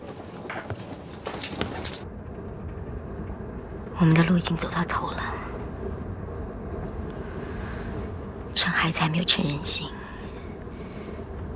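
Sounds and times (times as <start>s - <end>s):
bunch of keys jingling: 0.0s - 2.1s
low steady rumble: 0.9s - 11.5s
speech: 4.0s - 5.5s, 8.8s - 10.0s.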